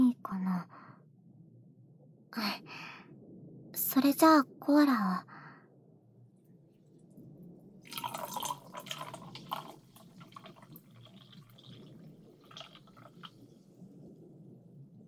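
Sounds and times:
speech: 3.9 - 5.3
carbonated drink poured over ice: 7.9 - 13.8
carbonated drink fizzing effervescence: 7.9 - 14.2.

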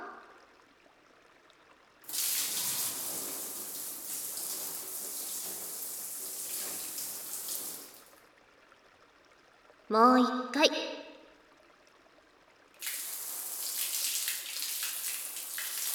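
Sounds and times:
warm water poured to rinse someone off: 2.0 - 8.2, 12.8 - 15.9
speech: 9.9 - 10.9.

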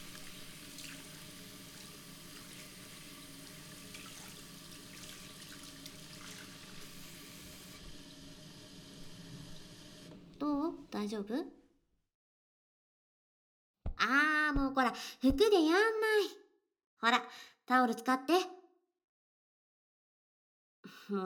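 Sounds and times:
child rinsing soap foam off hands with tap water: 0.0 - 10.4
tap water running: 0.0 - 11.0
speech: 10.4 - 11.6, 14.9 - 16.4, 17.0 - 18.6.

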